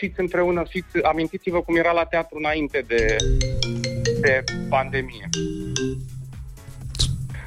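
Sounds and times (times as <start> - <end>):
speech: 0.0 - 3.6, 4.2 - 6.1
phone ringtone playing a short electronic melody: 3.0 - 6.3.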